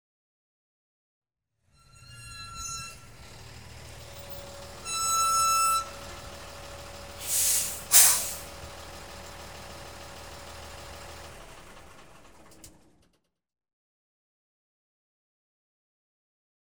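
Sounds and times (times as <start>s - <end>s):
diesel vehicle exterior approaching, stopping and switching off: 1.8s - 13.2s.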